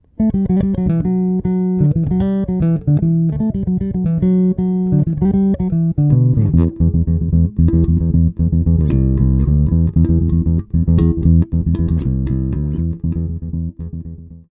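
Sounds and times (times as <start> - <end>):
bridge bass with mid boost: 0.0 - 14.4.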